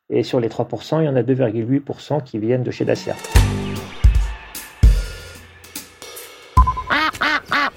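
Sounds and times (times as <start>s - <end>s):
speech: 0.1s - 3.9s
ducks quacking loudly: 6.7s - 7.7s.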